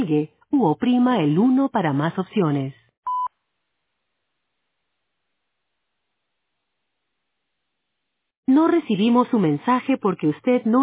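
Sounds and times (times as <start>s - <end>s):
speech: 0.1s - 2.8s, 8.5s - 10.8s
voicemail recording tone beep: 3.1s - 3.3s.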